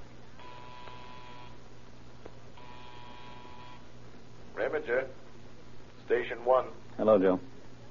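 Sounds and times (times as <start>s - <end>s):
constant low mains-like hum: 0.0s - 7.8s
field telephone buzzing: 0.4s - 1.6s, 2.6s - 3.9s
speech: 4.7s - 5.2s, 6.1s - 7.5s.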